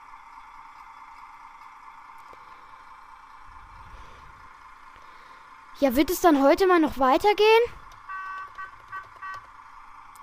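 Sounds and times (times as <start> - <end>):
speech: 5.8 - 7.8
bus horn honking in a traffic jam: 8.0 - 9.7.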